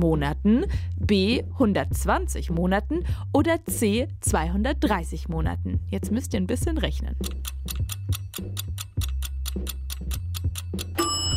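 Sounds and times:
speech: 0:00.0 - 0:08.6
low musical bed: 0:00.0 - 0:11.3
quiz countdown timer ticking: 0:06.6 - 0:11.3.

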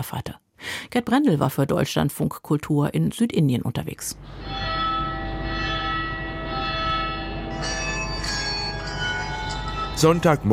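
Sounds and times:
speech: 0:00.0 - 0:04.8, 0:10.0 - 0:10.5
church bells of many churches ringing on a Sunday morning in Trishur, Kerala, India: 0:04.4 - 0:10.5.

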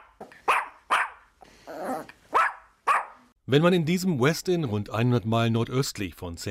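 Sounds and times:
one-year-old Pinscher-Chihuahua mix dog barking at a hotel reception desk: 0:00.0 - 0:01.3, 0:01.9 - 0:03.3
Pinscher-Chihuahua mix dog growling: 0:01.7 - 0:02.2
speech: 0:03.5 - 0:06.4.

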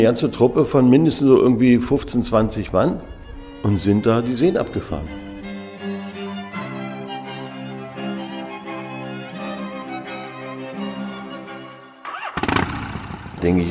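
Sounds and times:
speech: 0:00.0 - 0:05.2, 0:13.4 - 0:13.7
motorcycle engine starting, idling and revving: 0:12.0 - 0:13.7.

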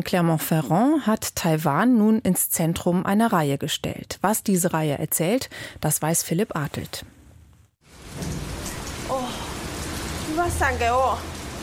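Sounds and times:
speech: 0:00.0 - 0:07.1, 0:10.4 - 0:11.4
heavy rain pouring down on a city in Taiwan: 0:07.8 - 0:11.6.

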